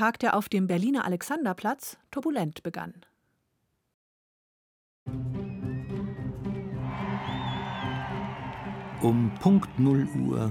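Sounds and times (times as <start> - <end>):
speech: 0.0 - 3.1, 5.1 - 5.4, 9.0 - 10.4
large crowd cheering: 6.0 - 10.4
high whoops and screams from a crowd: 6.9 - 10.2
joyful shouts from a crowd: 6.9 - 10.4.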